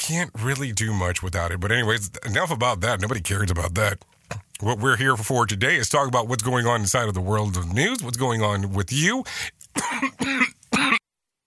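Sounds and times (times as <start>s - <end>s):
speech: 0.1s - 11.0s
harsh coughs: 9.8s - 11.0s.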